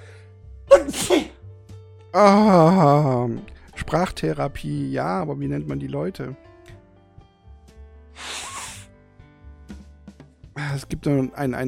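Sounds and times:
loud sneeze: 0.7 - 1.4, 8.2 - 8.9
speech: 0.8 - 1.4, 2.1 - 6.4, 10.8 - 11.6.

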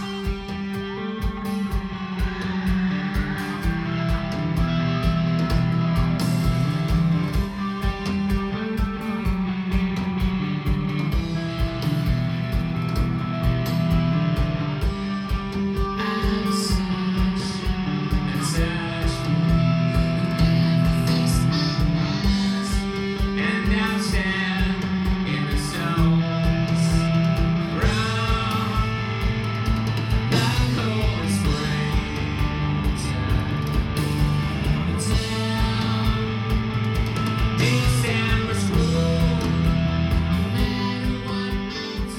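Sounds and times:
live rock band playing a song: 0.0 - 42.1
sustained guitar chords: 0.0 - 42.1.

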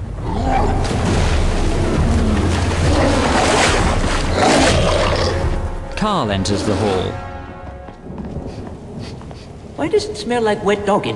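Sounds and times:
water sloshing and churning as a werewolf-like creature wades across a river: 0.0 - 6.0
speech: 6.0 - 7.3, 9.8 - 11.1.

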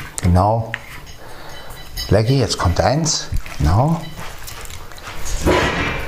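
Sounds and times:
speech: 0.2 - 0.8, 2.1 - 4.1
rough thumping and scraping noise: 3.4 - 6.0
chair banging with a heavy knock: 5.4 - 6.0.

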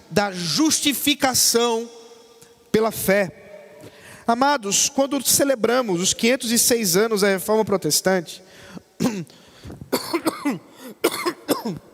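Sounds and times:
speech: 0.1 - 2.0, 2.8 - 11.8
preacher with bronchitis coughing during a church service: 9.0 - 11.9.

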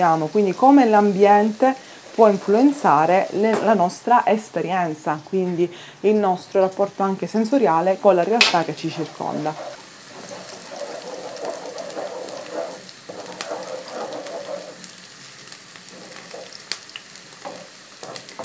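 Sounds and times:
brief stir of onions in a pan: 0.0 - 3.5, 8.1 - 18.4
speech: 0.0 - 9.8
onions sizzling while frying in a hot pan: 0.0 - 18.4.

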